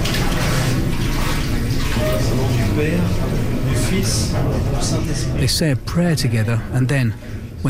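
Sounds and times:
water sloshing and splashing in a stone bath: 0:00.0 - 0:05.8
speech: 0:02.3 - 0:07.6.

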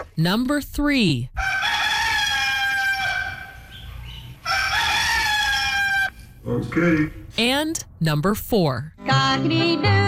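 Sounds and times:
speech: 0:00.2 - 0:01.3, 0:06.5 - 0:10.0
rooster crowing: 0:01.4 - 0:06.3.

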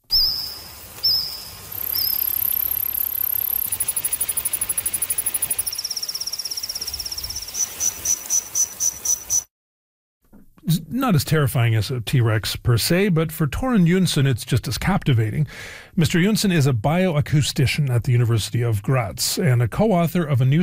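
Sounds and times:
recreated calls of Jurassic-era insects: 0:00.1 - 0:09.5
speech: 0:11.0 - 0:20.6.

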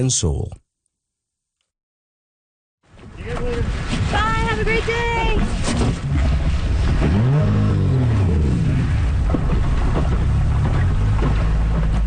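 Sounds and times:
speech: 0:00.0 - 0:00.6
constant wash of water: 0:02.9 - 0:12.0
motorboat engine droning and revving: 0:02.9 - 0:12.0.

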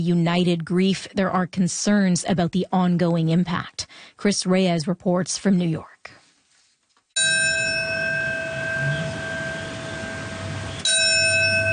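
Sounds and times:
speech: 0:00.0 - 0:06.2
memorial bell struck for the 9/11 anniversary: 0:07.2 - 0:11.7.

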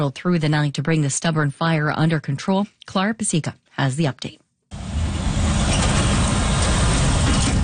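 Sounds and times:
speech: 0:00.0 - 0:04.4
heavy trucks rumbling past a scrap metal yard in Brampton: 0:04.7 - 0:07.6.

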